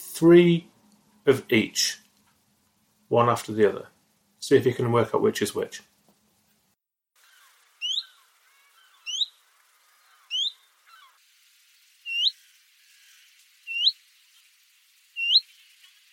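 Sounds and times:
speech: 0.2s - 2.0s, 3.1s - 3.9s, 4.5s - 5.9s
willow warbler and chiffchaff hweet calls: 7.2s - 11.2s, 12.0s - 12.5s, 13.1s - 14.5s, 15.2s - 15.6s.

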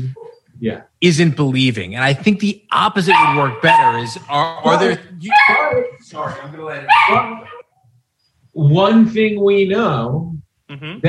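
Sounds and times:
speech: 0.0s - 7.5s, 8.6s - 11.0s
dog barking and yipping: 3.0s - 7.7s.

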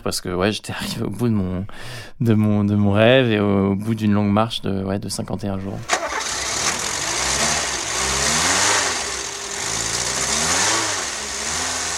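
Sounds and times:
speech: 0.0s - 6.1s
Renault 4 car engine running and revving: 5.9s - 11.9s.

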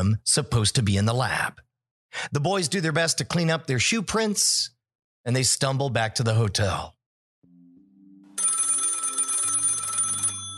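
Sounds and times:
speech: 0.0s - 7.0s
low steady hum of music: 7.4s - 10.5s
telephone bell ringing: 8.3s - 10.5s.

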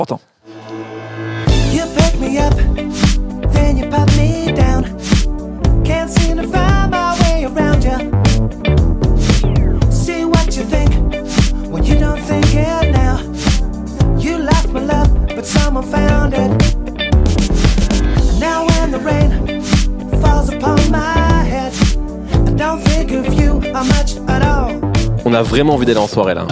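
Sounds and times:
speech: 0.0s - 0.3s, 1.7s - 5.1s, 5.8s - 8.6s, 15.4s - 16.8s, 25.3s - 26.5s
full-band danceable music track: 1.5s - 26.1s.

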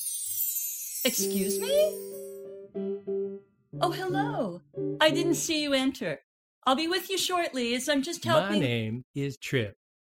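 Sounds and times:
wind chimes tinkling: 0.0s - 2.4s
speech: 1.0s - 2.2s, 2.8s - 9.8s.

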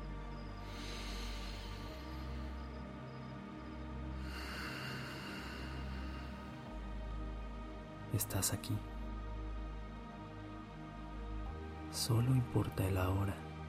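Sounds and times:
steady low humming drone: 0.0s - 11.9s
slow deep breathing during a meditation: 0.3s - 7.6s
speech: 8.2s - 8.9s, 12.0s - 13.5s.

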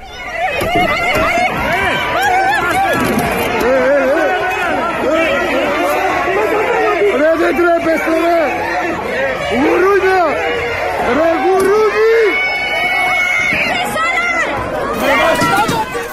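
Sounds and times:
protesting doctors and riot police shouting and yelling: 0.0s - 16.1s.

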